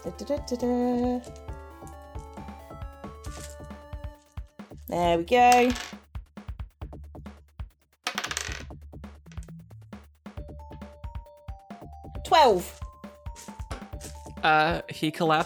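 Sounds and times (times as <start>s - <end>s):
speech: 0.0s - 1.4s, 4.9s - 5.9s, 12.4s - 12.8s, 14.4s - 15.4s
eight-sided dice rolling across a tabletop: 5.5s - 6.0s, 8.0s - 8.7s.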